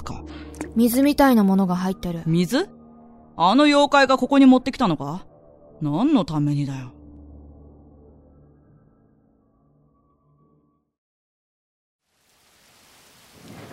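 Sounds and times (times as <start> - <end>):
speech: 0.7 - 2.8, 3.4 - 7.0
heavy rain: 12.1 - 13.7.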